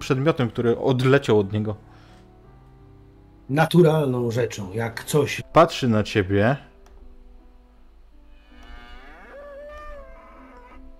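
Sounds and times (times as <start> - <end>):
speech: 0.1 - 1.9, 3.5 - 6.7
bull mooing in a role-playing game scene: 8.4 - 10.9.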